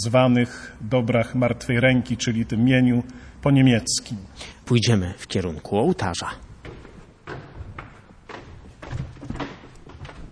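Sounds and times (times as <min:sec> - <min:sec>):
speech: 0:00.0 - 0:06.5
heavy church door opening and closing with thuds and clunks: 0:06.4 - 0:10.3.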